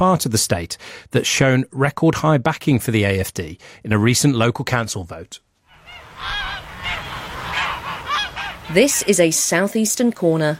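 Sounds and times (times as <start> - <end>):
speech: 0.0 - 5.4, 8.7 - 10.5
geese honking at a large goose farm in rural southeastern Brandenburg Germany: 5.7 - 9.6.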